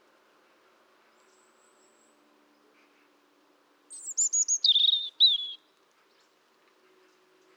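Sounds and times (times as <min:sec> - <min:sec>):
European robin singing: 0:04.0 - 0:05.6.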